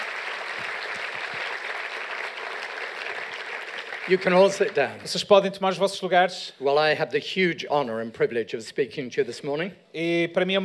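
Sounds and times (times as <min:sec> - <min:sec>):
sizable crowd applauding a band: 0:00.0 - 0:05.2
speech: 0:04.1 - 0:10.6.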